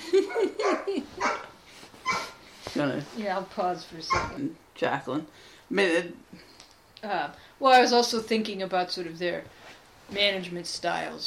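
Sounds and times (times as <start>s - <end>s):
dog barking: 0.3s - 1.5s, 2.1s - 2.4s, 4.1s - 4.4s
speech: 2.8s - 11.2s.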